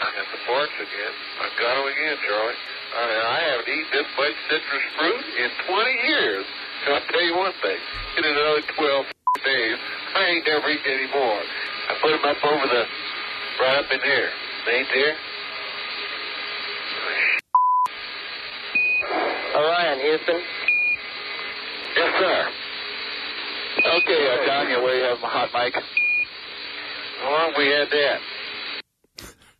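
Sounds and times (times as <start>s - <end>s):
crackly band-limited radio voices talking: 0.0s - 29.4s
speech: 0.5s - 13.0s, 13.6s - 15.3s, 19.6s - 20.6s, 22.0s - 22.6s, 23.8s - 26.1s, 27.2s - 28.3s
steady mid-pitched censor bleep: 17.6s - 17.9s.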